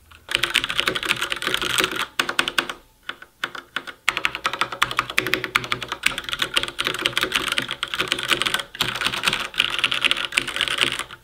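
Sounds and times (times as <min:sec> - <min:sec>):
mechanical keyboard with linear switches typing: 0:00.2 - 0:11.2.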